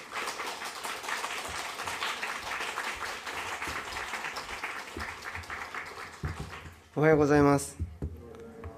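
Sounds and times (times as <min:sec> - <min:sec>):
audience applause welcoming a speaker: 0:00.0 - 0:06.9
speech: 0:07.0 - 0:07.9.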